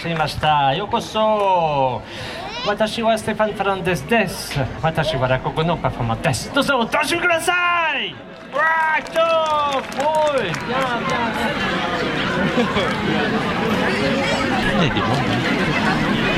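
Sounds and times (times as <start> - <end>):
speech: 0.0 - 14.2, 14.8 - 16.3
crowd babble in a park under blossoming cherry trees at Sceaux near Paris: 0.0 - 16.3
laughter: 10.5 - 16.3.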